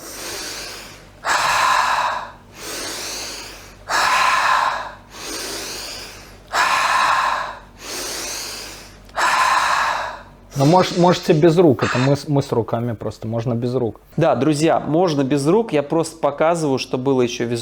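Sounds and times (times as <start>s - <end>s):
person breathing in through the nose and out through the mouth: 0.0s - 12.2s
speech: 10.6s - 17.6s.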